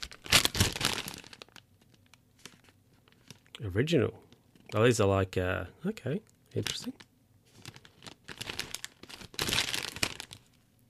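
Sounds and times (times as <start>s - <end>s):
opened plastic packet of banana chips crinkling: 0.0s - 3.6s, 6.6s - 10.8s
speech: 3.6s - 7.1s.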